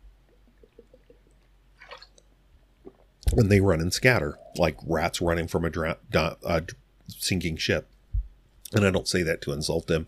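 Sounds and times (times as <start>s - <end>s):
person sipping water: 0.3s - 3.3s
speech: 3.3s - 7.9s, 8.7s - 10.0s.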